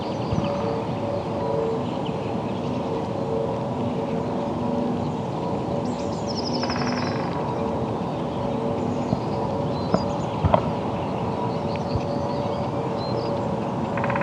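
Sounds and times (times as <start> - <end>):
constant faint hum: 0.0 - 14.2
woodpeckers drumming in a forest: 14.0 - 14.2.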